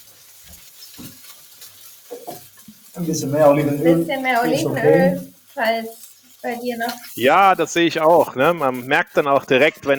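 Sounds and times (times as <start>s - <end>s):
shellfish clattering as tossed and shaken in a frying pan: 0.0s - 3.0s, 5.3s - 9.9s
mussels, clams and small shrimp sizzling in a hot frying pan: 0.0s - 9.9s
speech: 3.0s - 9.9s.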